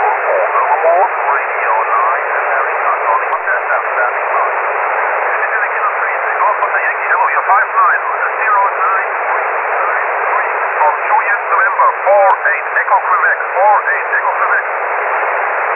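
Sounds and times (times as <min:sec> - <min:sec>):
1296 SSB radio signal: 0:00.0 - 0:15.7.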